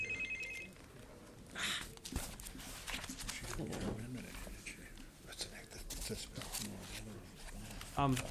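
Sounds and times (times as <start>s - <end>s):
phone ringing with an electronic warble in a large room: 0.0s - 0.8s
papers rustling: 1.8s - 4.6s, 5.8s - 8.2s.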